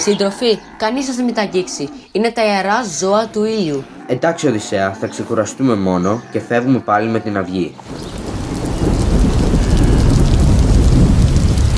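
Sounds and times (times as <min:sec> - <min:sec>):
speech: 0:00.0 - 0:08.2
deep thunder rumbling: 0:07.8 - 0:11.7
dense heavy rain in a thunderstorm: 0:07.8 - 0:11.7.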